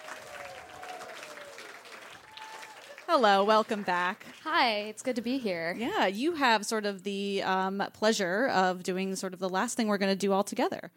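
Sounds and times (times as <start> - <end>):
audience applause: 0.0 - 4.7
speech: 3.1 - 10.9.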